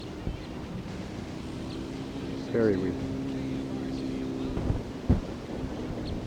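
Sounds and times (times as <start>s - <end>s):
steady outdoor wind rumbling: 0.0s - 6.2s
speech: 2.5s - 3.2s.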